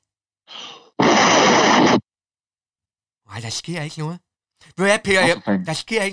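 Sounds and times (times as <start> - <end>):
hard breath blown into a phone mic: 0.5 - 2.0
person inhaling: 0.5 - 2.0
speech: 3.4 - 6.1.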